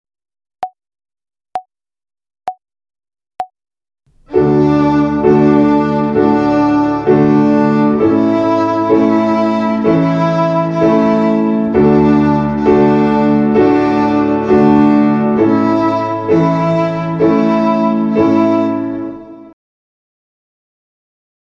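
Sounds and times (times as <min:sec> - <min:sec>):
violin finger exercise on the D string in quadruple time: 0:04.1 - 0:19.6.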